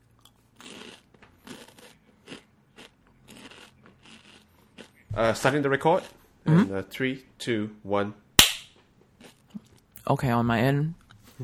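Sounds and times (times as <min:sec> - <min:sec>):
crisp crunching from person eating: 0:00.2 - 0:05.0
speech: 0:05.2 - 0:08.2, 0:10.1 - 0:11.4.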